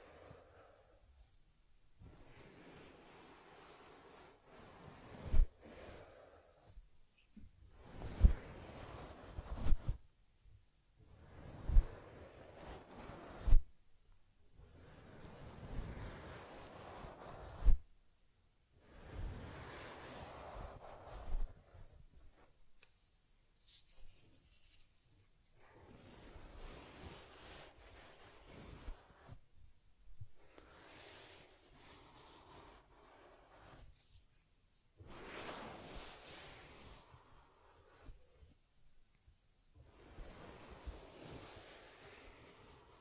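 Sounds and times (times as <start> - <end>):
soft rubbing and combing strokes on teddy fur: 2.2 - 10.0, 11.3 - 13.7, 14.8 - 17.8, 19.0 - 29.5, 30.1 - 38.7, 39.8 - 42.9.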